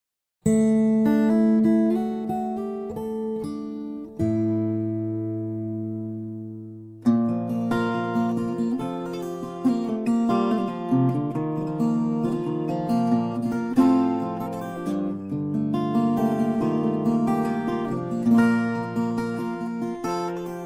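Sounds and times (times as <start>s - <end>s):
mahogany and Sitka Veillette Terz 6 guitar playing: 0.5s - 20.6s.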